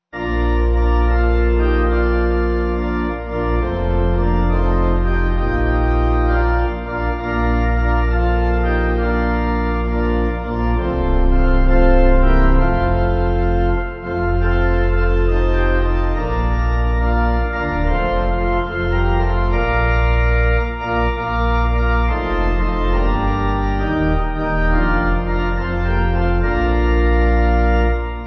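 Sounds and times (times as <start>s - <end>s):
pipe organ playing: 0.1s - 28.2s.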